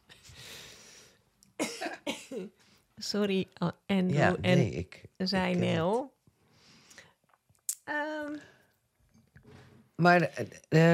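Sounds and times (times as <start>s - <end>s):
soft breathy noise: 0.1s - 1.3s, 6.4s - 7.2s
sharp cough: 1.6s - 2.5s
speech: 1.8s - 6.1s, 10.0s - 10.9s.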